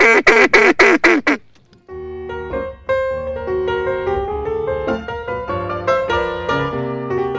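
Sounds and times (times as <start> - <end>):
duck calls being blown in practice, loud nasal quacks: 0.0 - 1.4
instrumental music: 1.5 - 7.3.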